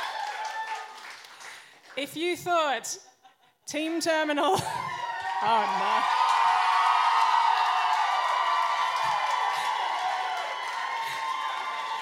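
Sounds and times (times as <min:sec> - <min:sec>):
debate audience cheering and whooping: 0:00.0 - 0:01.2, 0:04.6 - 0:12.0
speech: 0:02.0 - 0:03.1, 0:03.7 - 0:04.8, 0:05.4 - 0:06.2.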